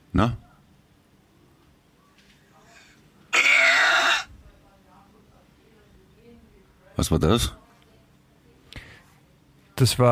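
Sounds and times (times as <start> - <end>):
speech: 0.2 - 0.4, 7.0 - 7.6, 9.8 - 10.1
loud sustained raspy burp: 3.3 - 4.3.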